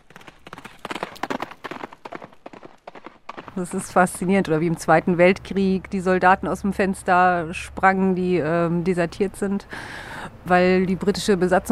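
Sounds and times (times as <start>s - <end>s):
horse hooves clip-clopping on a hard surface: 0.0s - 5.4s
speech: 3.6s - 11.7s.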